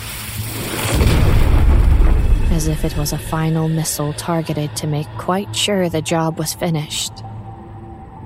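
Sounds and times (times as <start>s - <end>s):
heavy chunk of aircraft fuselage debris crashing down: 0.4s - 3.6s
speech: 2.6s - 7.3s.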